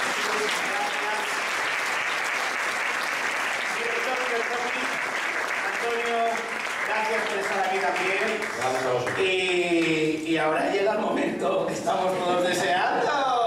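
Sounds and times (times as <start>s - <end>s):
audience applause for a panel of experts at a live event: 0.0s - 10.2s
speech: 7.1s - 13.2s.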